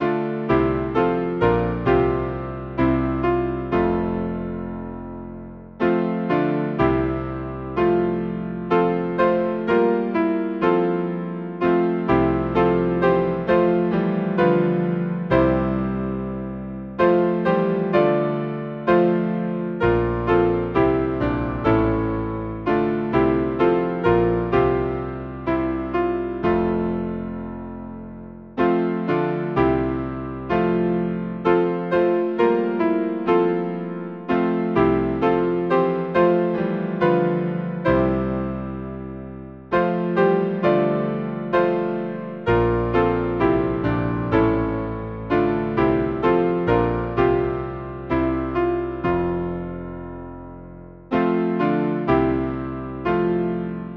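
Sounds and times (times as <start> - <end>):
hymn on piano: 0.0 - 53.9.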